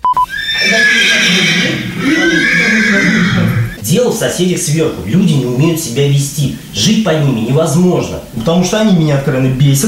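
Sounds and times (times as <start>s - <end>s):
short electronic beeps: 0.0s - 0.3s
horse neighing: 0.2s - 3.8s
speech: 3.4s - 9.8s.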